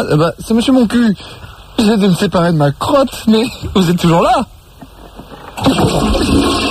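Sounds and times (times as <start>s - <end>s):
speech: 0.0s - 4.6s, 5.6s - 6.7s
toilet flushing: 5.6s - 6.7s.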